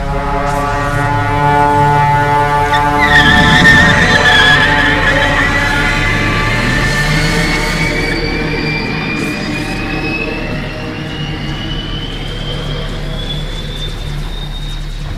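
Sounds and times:
high car tire squeal: 0.9s - 15.1s
car engine roaring at full throttle: 1.1s - 12.2s.

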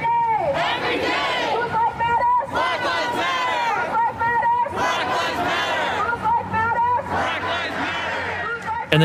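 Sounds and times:
large protest crowd chanting and shouting: 0.0s - 9.0s.

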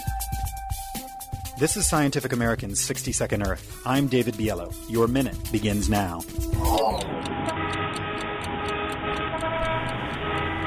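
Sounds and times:
speech: 1.6s - 7.2s
car horns honking in a traffic jam: 6.9s - 10.6s.

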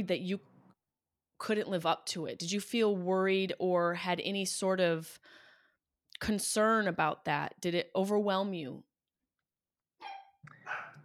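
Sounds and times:
speech: 0.0s - 0.5s, 1.4s - 5.4s, 6.2s - 8.9s
dog barking: 10.0s - 11.0s.

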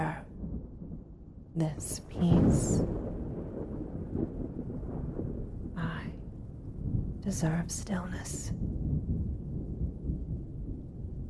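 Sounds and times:
person whispering: 0.0s - 0.2s, 1.6s - 2.8s, 5.8s - 6.2s, 7.2s - 8.5s
rolling thunder: 0.0s - 11.2s
speech: 1.6s - 3.0s, 7.2s - 8.8s.

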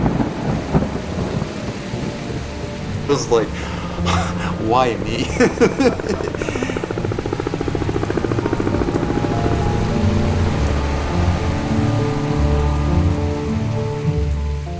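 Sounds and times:
thunder rumble: 0.0s - 14.0s
heavy pouring rain: 0.0s - 14.7s
speech: 3.1s - 6.8s
laughter: 3.1s - 7.1s.

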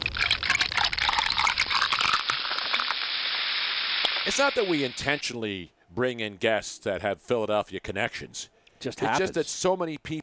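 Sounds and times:
cola being poured: 0.0s - 4.9s
carbonated fizz of cola: 0.0s - 5.2s
speech: 4.2s - 10.2s.

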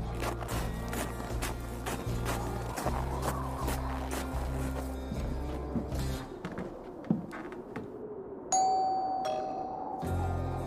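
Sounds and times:
footsteps walking up to a house: 0.0s - 8.0s
two-tone doorbell chime: 8.5s - 9.8s.

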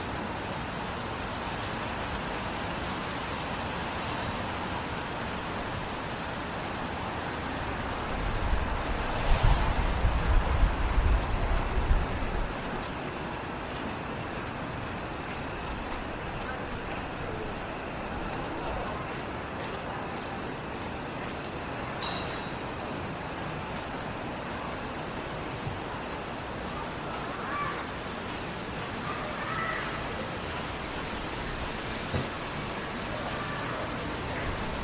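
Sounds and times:
light rain hiss on a downtown city street at night: 0.0s - 34.8s
vehicle passing with a low rumble and splash: 7.1s - 12.2s.

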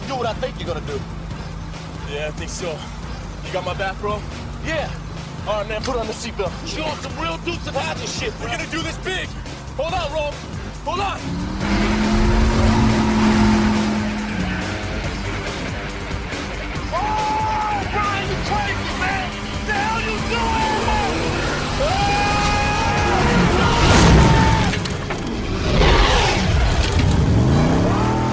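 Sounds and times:
car engine roaring at speed: 0.0s - 28.3s
tires squealing: 0.0s - 28.3s
speech: 0.2s - 1.2s, 2.1s - 11.7s
car crashing onto a boat: 22.0s - 27.4s.

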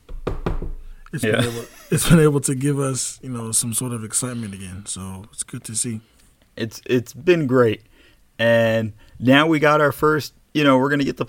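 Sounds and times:
knocking on wood: 0.0s - 0.8s
speech: 1.1s - 11.2s
laughter: 1.2s - 2.4s.

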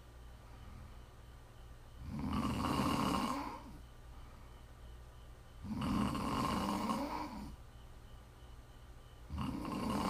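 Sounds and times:
low steady hum: 0.0s - 10.0s
loud rough snores: 2.0s - 3.8s, 5.6s - 7.6s, 9.3s - 10.0s.

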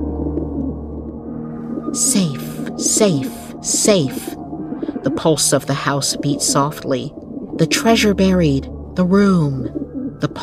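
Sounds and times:
wood pigeon cooing: 0.0s - 8.1s
speech: 1.9s - 4.4s, 5.0s - 10.4s.

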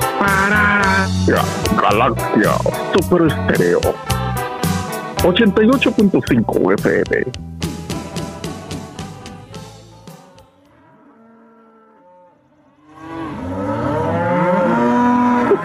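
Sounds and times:
cows mooing: 0.0s - 3.0s, 9.5s - 15.6s
speech: 1.3s - 4.2s, 5.2s - 7.5s.

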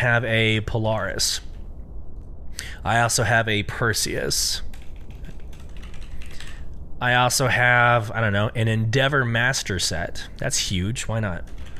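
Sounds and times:
speech: 0.0s - 1.5s, 2.6s - 4.7s, 7.0s - 11.6s
typing on a computer keyboard: 4.7s - 6.6s, 11.4s - 11.7s.

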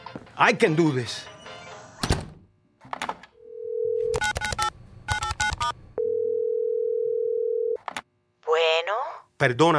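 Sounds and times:
speech: 0.4s - 1.3s, 9.4s - 9.7s
telephone dial tone: 3.4s - 7.8s
telephone keypad beeps: 4.1s - 5.7s.

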